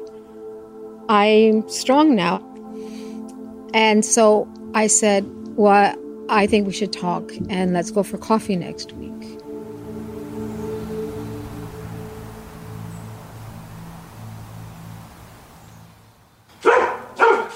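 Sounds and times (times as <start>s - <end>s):
low steady humming tones: 0.0s - 16.4s
speech: 1.1s - 2.5s, 3.7s - 9.4s
restless dog barking: 16.6s - 17.5s.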